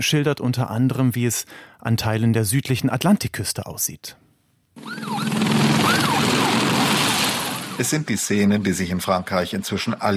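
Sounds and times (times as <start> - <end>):
speech: 0.0 - 4.2, 7.8 - 10.1
roar of engines and machinery: 4.8 - 7.6
emergency vehicle siren wailing: 4.8 - 8.1.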